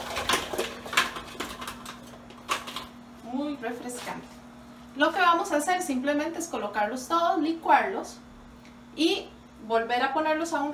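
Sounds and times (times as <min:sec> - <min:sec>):
frozen coconut or almond milk cubes clattering into plastic food processor bowl: 0:00.0 - 0:02.9
faint steady hum: 0:00.0 - 0:10.7
speech: 0:03.6 - 0:04.4, 0:05.0 - 0:08.2, 0:09.0 - 0:10.7.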